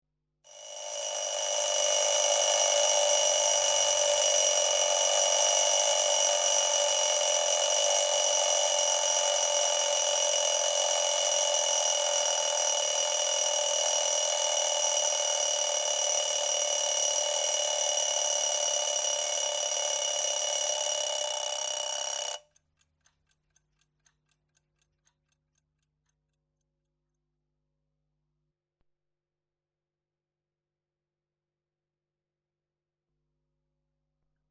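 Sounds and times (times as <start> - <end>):
clock ticking: 0.5 - 22.4.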